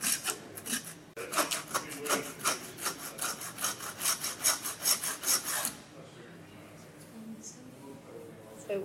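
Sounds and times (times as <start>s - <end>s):
hand saw cutting through lamb skull: 0.0s - 5.8s.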